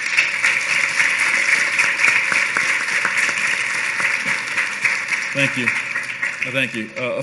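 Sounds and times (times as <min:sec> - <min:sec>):
crowd applauding steadily: 0:00.0 - 0:07.2
speech: 0:05.4 - 0:05.8, 0:06.4 - 0:07.2.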